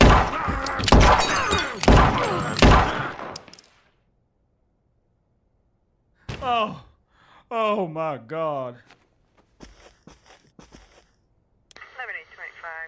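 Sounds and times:
gunshots in a cartoon standoff: 0.0s - 3.4s
speech: 7.8s - 9.0s.

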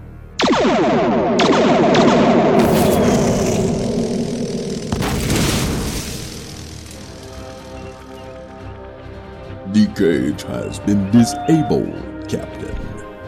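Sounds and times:
sci-fi starship torpedoes being fired: 0.4s - 8.4s
sci-fi starship torpedo explosion blast with roaring rumble: 0.5s - 8.2s
speech: 10.0s - 12.9s.

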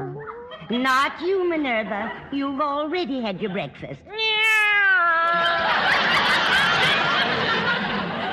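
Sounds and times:
speech: 0.7s - 4.3s
cat meowing: 4.2s - 5.4s
laughter: 5.2s - 8.3s.

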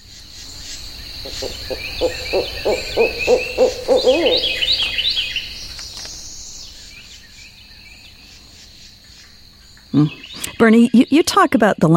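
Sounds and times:
birds chirping and trilling in a Florida swamp sanctuary: 0.0s - 11.9s
frogs croaking in a Florida swamp sanctuary: 0.0s - 11.9s
steady high insect drone in a Florida swamp sanctuary: 0.0s - 11.9s
speech: 1.2s - 4.6s, 10.0s - 11.9s.

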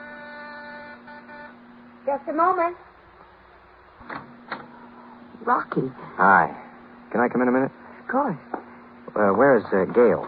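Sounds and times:
apartment electric doorbell buzz: 0.0s - 2.2s
speech: 2.0s - 2.9s, 4.0s - 4.4s, 5.4s - 8.6s, 9.2s - 10.2s.

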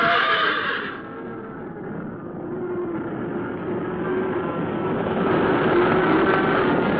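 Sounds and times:
black horse whinnying shrilly as it goes down: 0.0s - 1.1s
dense continuous rumbling roar of stampeding longhorn herd: 0.0s - 6.8s.

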